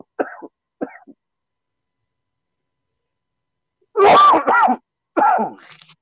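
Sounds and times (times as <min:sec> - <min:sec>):
person coughing in a coughing fit: 0:00.0 - 0:01.2, 0:04.0 - 0:05.6.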